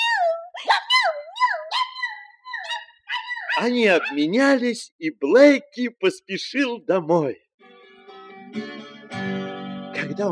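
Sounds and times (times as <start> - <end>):
dog barking in high yelping bursts and howl-like tones: 0.0 - 4.6
speech: 3.6 - 7.4, 8.5 - 9.4, 10.1 - 10.2.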